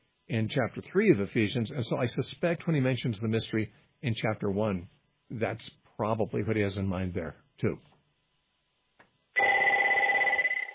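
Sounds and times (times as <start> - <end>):
speech: 0.3 - 7.9
phone ringtone ringing: 9.4 - 10.7.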